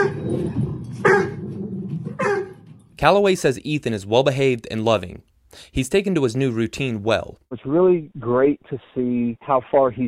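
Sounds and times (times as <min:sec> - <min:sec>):
dog barking: 0:00.0 - 0:00.2, 0:01.0 - 0:01.4, 0:02.2 - 0:02.6
speech: 0:03.0 - 0:10.0.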